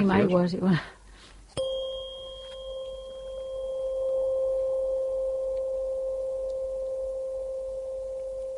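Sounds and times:
528 Hz tuning fork struck and ringing with a pure tone: 1.6s - 8.5s.

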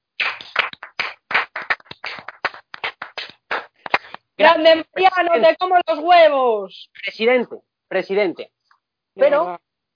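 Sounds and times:
small group clapping hands for a politician: 0.2s - 5.4s
speech: 4.4s - 8.6s, 9.2s - 9.6s.

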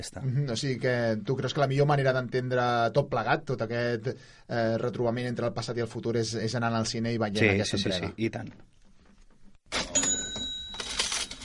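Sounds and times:
speech: 0.0s - 8.8s
cash register bell chime: 9.8s - 11.4s.

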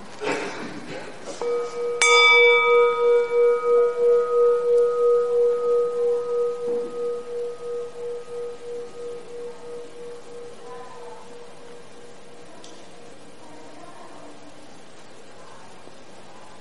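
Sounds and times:
meditation bell ringing: 1.4s - 13.4s.

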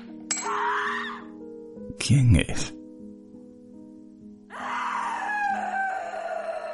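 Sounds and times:
loud piercing screaming cries: 0.4s - 1.4s, 4.5s - 6.7s
speech: 2.1s - 2.8s.

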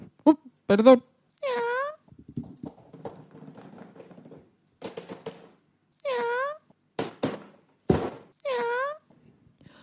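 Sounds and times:
speech: 0.7s - 1.1s
thumps and knocks: 2.1s - 5.6s, 7.0s - 8.4s
cat wailing meows: 6.0s - 6.6s, 8.4s - 9.1s.

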